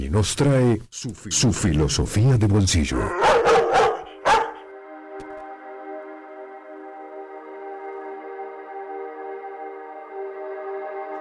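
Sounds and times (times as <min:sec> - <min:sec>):
speech: 0:00.1 - 0:03.4
long steady tonal howl: 0:03.0 - 0:04.6
dog barking: 0:03.1 - 0:04.7.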